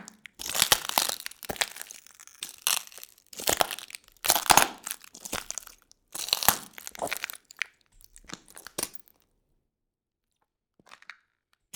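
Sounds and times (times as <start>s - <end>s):
footsteps on glass: 0.0s - 7.5s, 8.1s - 9.1s.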